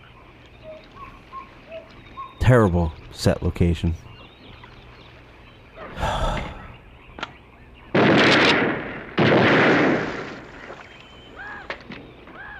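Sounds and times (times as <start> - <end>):
speech: 2.5 - 4.1
gunfire in a film scene shooting an alligator on an open lake: 7.9 - 10.8.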